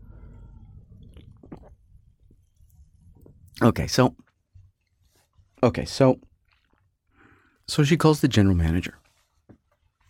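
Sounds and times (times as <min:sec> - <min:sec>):
person swigging and swallowing root beer: 0:00.0 - 0:03.6
low steady rumble: 0:00.0 - 0:05.0
speech: 0:03.6 - 0:04.2, 0:05.6 - 0:06.3, 0:07.7 - 0:09.0.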